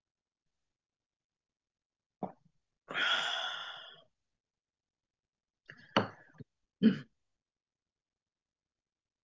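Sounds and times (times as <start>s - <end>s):
long raspy breath: 2.9s - 4.0s
person coughing: 6.8s - 7.1s.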